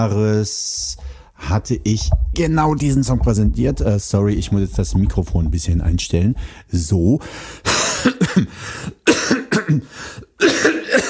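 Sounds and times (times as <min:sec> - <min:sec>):
speech: 0:00.0 - 0:08.9
harsh rasping coughing: 0:07.6 - 0:11.0.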